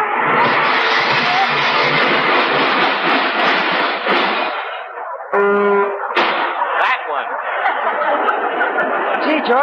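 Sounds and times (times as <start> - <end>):
sustained roar of a speeding vehicle: 0.0 - 4.9
clanging car-crash sound effect: 0.0 - 8.9
laughter: 4.1 - 9.6.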